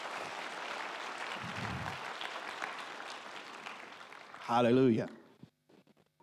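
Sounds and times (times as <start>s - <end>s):
crowd applauding: 0.0s - 5.0s
speech: 4.5s - 5.2s.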